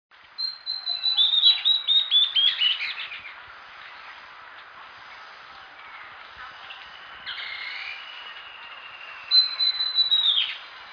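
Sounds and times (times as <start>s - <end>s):
bird song of whistled and warbled phrases: 0.1s - 10.9s.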